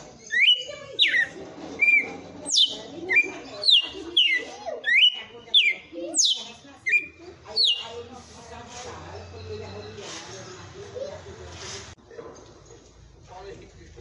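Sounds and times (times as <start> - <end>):
female Red-cowled cardinal singing whistled notes: 0.3 - 7.9.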